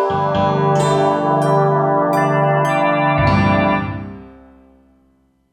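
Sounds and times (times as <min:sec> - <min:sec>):
synthesizer groan drone from factory patch: 0:00.1 - 0:04.2.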